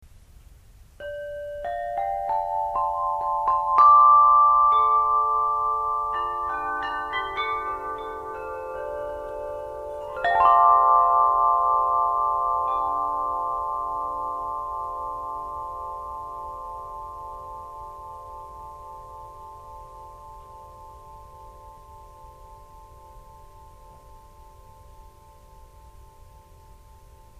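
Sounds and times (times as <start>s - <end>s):
tubular bells: 1.0s - 27.3s.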